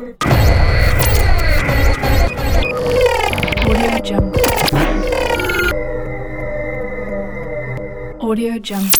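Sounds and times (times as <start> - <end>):
glitch reveal transition: 0.2 - 6.7, 8.7 - 8.9.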